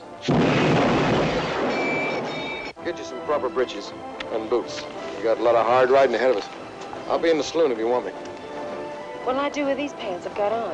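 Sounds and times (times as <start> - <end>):
gunshot with roaring rumble: 0.3 - 2.4
speech: 2.9 - 8.3, 9.2 - 10.7.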